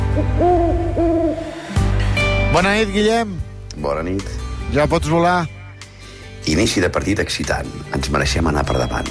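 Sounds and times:
speech: 0:00.2 - 0:01.1, 0:02.6 - 0:05.6, 0:06.5 - 0:09.1
owl hooting: 0:00.2 - 0:01.6.

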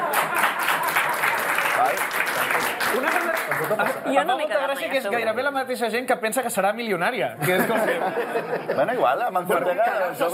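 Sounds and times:
laughter: 0:00.0 - 0:01.8, 0:07.4 - 0:09.8
crowd applauding: 0:00.0 - 0:04.2
speech: 0:03.0 - 0:10.3.

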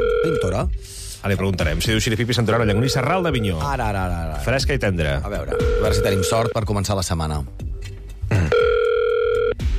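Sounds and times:
steady electronic telephone ringing tone: 0:00.0 - 0:00.6, 0:05.5 - 0:06.6, 0:08.5 - 0:09.6
speech: 0:00.2 - 0:08.6.

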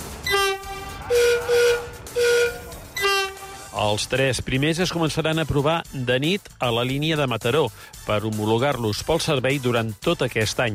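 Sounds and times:
horn of a new Rodalies commuter train in Catalonia: 0:00.1 - 0:03.8
speech: 0:03.9 - 0:10.7.

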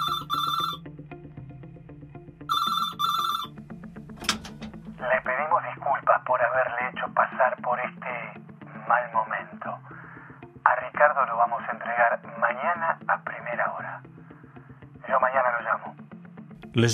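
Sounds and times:
telephone ringing with a bright electronic trill in a family home: 0:00.0 - 0:00.8, 0:02.5 - 0:03.5
music bed with low tones: 0:00.0 - 0:16.9.

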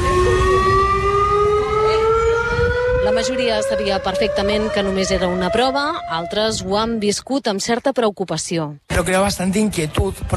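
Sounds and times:
civil defence siren wailing during an emergency drill in Granollers: 0:00.0 - 0:07.2
speech: 0:03.2 - 0:10.3.

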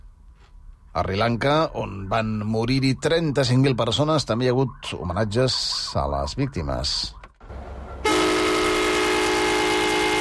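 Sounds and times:
speech: 0:01.0 - 0:07.2
train horn as the train resumes its journey in Sri Lanka: 0:08.0 - 0:10.2.

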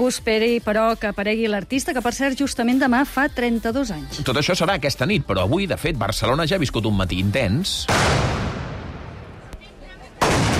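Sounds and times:
speech: 0:00.0 - 0:08.4
blunderbuss shots fired by trabucaires at a street festival in Barcelona: 0:07.9 - 0:09.6, 0:10.2 - 0:10.5.

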